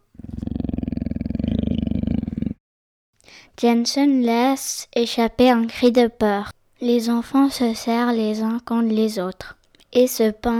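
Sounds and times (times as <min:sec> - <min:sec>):
breathy animal snort: 0:00.0 - 0:02.6
deep rumbling animal growl: 0:00.0 - 0:02.6
speech: 0:03.6 - 0:10.5.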